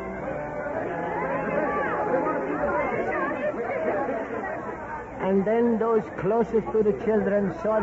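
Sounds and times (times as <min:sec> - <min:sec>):
restless crowd murmuring: 0:00.0 - 0:07.8
agitated raised voices: 0:00.7 - 0:05.1
speech: 0:05.3 - 0:07.8.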